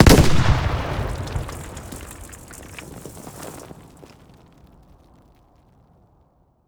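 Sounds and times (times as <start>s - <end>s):
close explosions: 0.0s - 2.7s.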